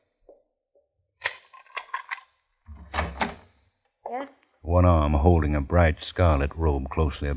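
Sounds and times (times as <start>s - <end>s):
upstairs bedroom door latch and handle rattling: 2.7s - 3.4s
upstairs bedroom door clicks: 2.7s - 3.5s
speech: 4.1s - 7.3s.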